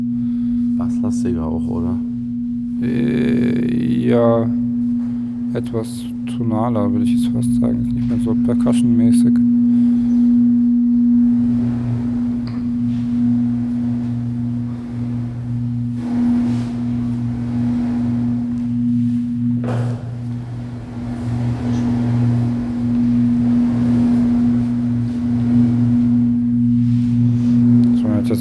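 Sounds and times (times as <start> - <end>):
loud steady low humming drone: 0.0 - 28.3
speech: 0.8 - 2.1, 2.8 - 4.6, 5.5 - 9.6
continuous rushing noise: 11.2 - 28.2.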